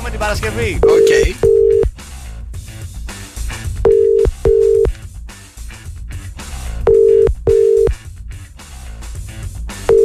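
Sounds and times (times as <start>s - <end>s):
speech: 0.2s - 1.6s
international telephone call ringing tones: 0.8s - 1.9s, 3.9s - 4.9s, 6.9s - 7.9s.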